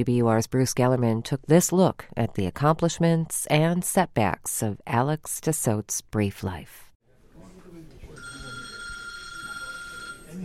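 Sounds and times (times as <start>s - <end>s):
speech: 0.0s - 6.8s
friends and family murmuring in hushed voices: 7.3s - 10.4s
telephone bell ringing indoors at a family home: 8.2s - 10.4s.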